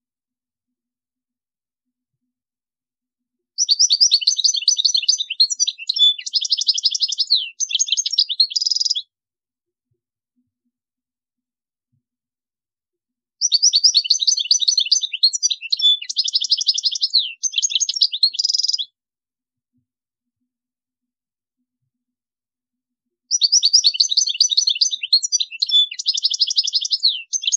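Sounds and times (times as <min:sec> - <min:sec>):
European goldfinch song with tinkling twitters and buzzy trills: 0:03.5 - 0:09.1, 0:13.4 - 0:19.0, 0:23.3 - 0:27.5.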